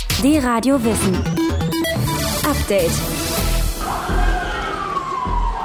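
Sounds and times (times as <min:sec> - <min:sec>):
speech: 0:00.2 - 0:01.4, 0:02.5 - 0:03.1
sirens wailing in Istanbul: 0:03.5 - 0:05.6.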